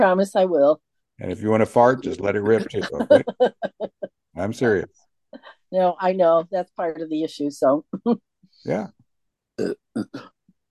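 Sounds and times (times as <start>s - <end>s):
speech: 0.0s - 5.0s, 5.7s - 9.0s, 9.6s - 10.4s
laughter: 2.2s - 4.8s
belching in short throaty bursts: 9.6s - 10.4s.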